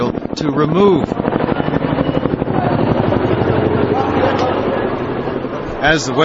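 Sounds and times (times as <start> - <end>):
convoy of green and white presidential helicopters flying overhead: 0.0 - 6.2
speech: 0.4 - 1.6, 5.8 - 6.2.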